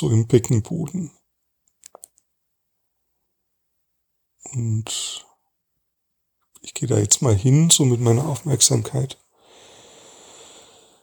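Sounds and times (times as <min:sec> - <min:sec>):
speech: 0:00.0 - 0:01.2, 0:04.5 - 0:05.3, 0:06.6 - 0:09.2
long deep breath: 0:09.3 - 0:11.0.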